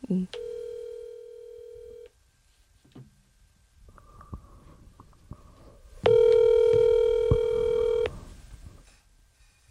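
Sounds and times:
steady electronic telephone tone of a call being placed: 0.4 - 2.1, 6.0 - 8.1.

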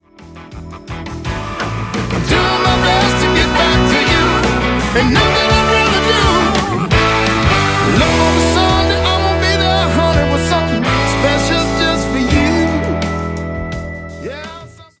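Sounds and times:
blues music: 0.0 - 14.9.

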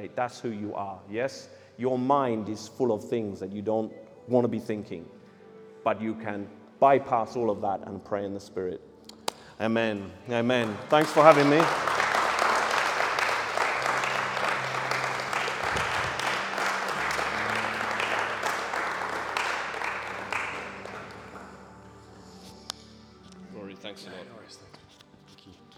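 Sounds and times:
speech: 0.0 - 5.2, 5.8 - 8.9, 9.6 - 11.9
audience applauding and cheering: 10.4 - 22.2.

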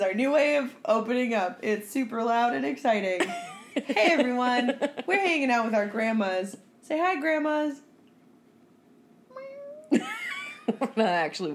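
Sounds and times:
speech: 0.0 - 7.8, 9.9 - 11.5
house cat meowing: 9.3 - 9.9.

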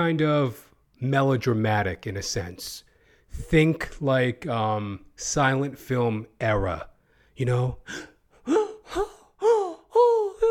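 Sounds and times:
speech: 0.0 - 9.1
person performing dramatic gasps in a melodramatic silent-film style: 7.0 - 9.9.

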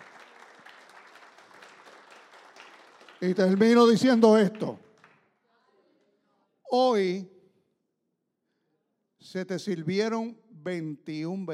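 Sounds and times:
audience applauding: 0.0 - 5.2
speech: 3.2 - 4.8, 6.7 - 7.3, 9.3 - 11.5.

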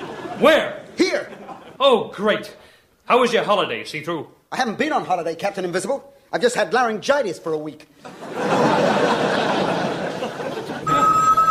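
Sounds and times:
audience laughter: 0.0 - 1.8, 8.0 - 11.4
speech: 0.4 - 9.2
electronic telephone bell ringing: 10.8 - 11.4.

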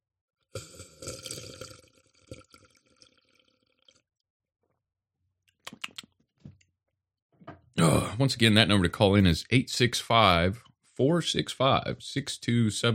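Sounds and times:
person slurping water: 0.5 - 4.0
person gulping water: 0.5 - 4.1
speech: 7.8 - 12.9.

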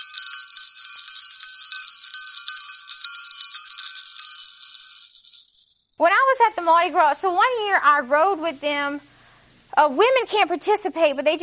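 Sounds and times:
many small bells jingling: 0.0 - 5.9
speech: 6.0 - 9.1, 9.8 - 11.4.

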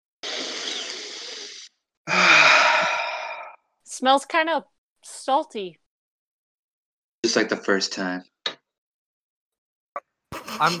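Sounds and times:
deep breaths taken after a helmet is unlatched: 2.1 - 3.6
speech: 4.0 - 5.8, 7.2 - 8.3, 10.6 - 10.7.

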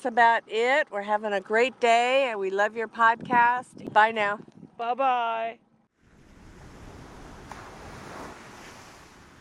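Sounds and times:
speech: 0.0 - 5.6
wind buffeting the microphone on the ocean: 2.4 - 5.5, 6.1 - 9.4
ocean surf during a kayaking trip: 6.0 - 9.4.

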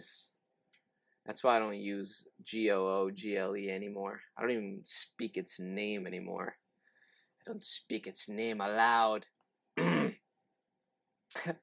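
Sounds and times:
speech: 1.3 - 6.6, 7.4 - 9.9, 11.4 - 11.6
person clearing throat with rasping bursts: 9.8 - 10.2.

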